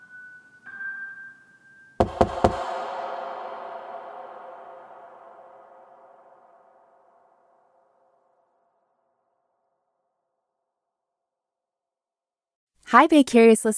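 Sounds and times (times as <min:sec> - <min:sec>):
loud heavy knocks on a door: 0:02.0 - 0:02.8
long ring: 0:02.0 - 0:08.6
speech: 0:12.9 - 0:13.7.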